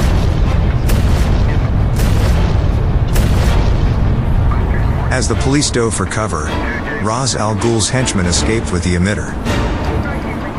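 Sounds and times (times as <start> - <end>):
water pipes bursting in explosions of pressurized steam: 0.0 - 5.8
heavy continuous roaring rumble: 0.0 - 10.5
speech: 5.2 - 9.8.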